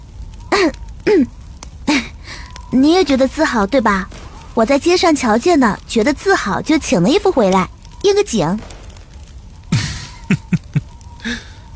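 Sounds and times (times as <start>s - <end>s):
speech: 1.0s - 1.4s, 2.7s - 8.7s
person clearing throat: 9.8s - 10.8s
laughter: 9.8s - 11.4s.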